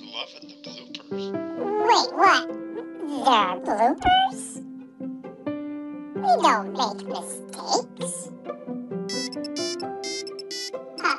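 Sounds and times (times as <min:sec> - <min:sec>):
speech: 0:00.2 - 0:02.6, 0:03.2 - 0:04.5, 0:06.3 - 0:08.4
mobile phone ringtone ringing a bright stepped melody: 0:09.1 - 0:11.1.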